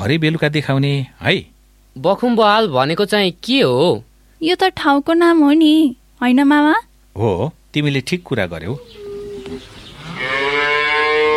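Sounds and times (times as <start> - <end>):
speech: 0.0 - 9.7
hungry cow mooing: 8.8 - 11.3.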